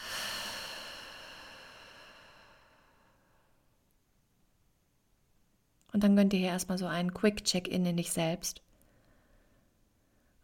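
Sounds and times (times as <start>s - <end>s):
deep breath in through the nose, out through the mouth: 0.0s - 3.5s
speech: 5.9s - 8.6s.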